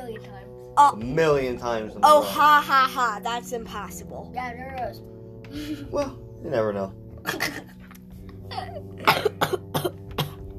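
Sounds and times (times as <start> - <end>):
speech: 0.1 - 7.6
person with a lingering little cough coughing at home: 7.2 - 7.8, 8.5 - 10.5.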